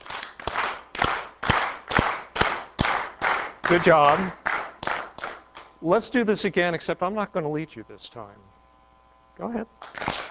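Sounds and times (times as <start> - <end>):
audience clapping in unison: 0.0 - 5.7, 9.8 - 10.3
speech: 3.7 - 4.4, 5.8 - 8.6, 9.4 - 10.0.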